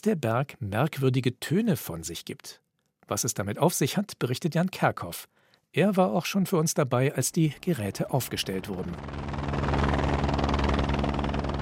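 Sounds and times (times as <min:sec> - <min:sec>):
speech: 0:00.0 - 0:09.6
helicopter rotor chopping while hovering: 0:07.7 - 0:11.5
deep droning helicopter engine: 0:08.2 - 0:11.5.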